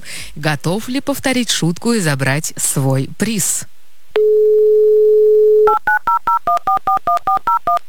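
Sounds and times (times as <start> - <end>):
speech: 0.4 - 3.7, 5.7 - 7.8
DTMF touch-tone beeps dialing a phone number: 4.2 - 7.8.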